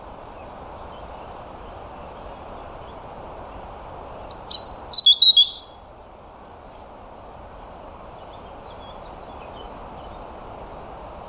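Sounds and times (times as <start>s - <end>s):
soft background hiss: 0.0s - 11.2s
European robin singing: 4.2s - 5.8s.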